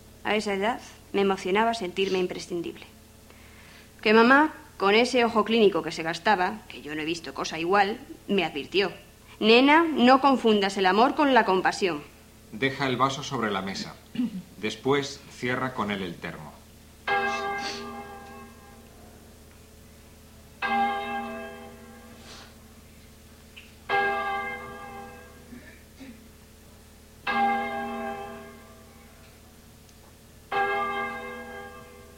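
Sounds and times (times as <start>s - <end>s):
speech: 0.2s - 3.0s, 4.0s - 16.5s
church clock bell tolling five o'clock: 17.1s - 18.8s, 20.6s - 22.2s, 23.9s - 25.5s, 27.2s - 29.1s, 30.5s - 32.1s.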